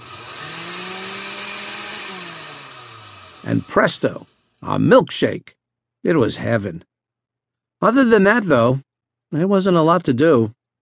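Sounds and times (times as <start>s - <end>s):
electric blender running: 0.0s - 4.6s
speech: 3.4s - 6.9s, 7.8s - 10.6s.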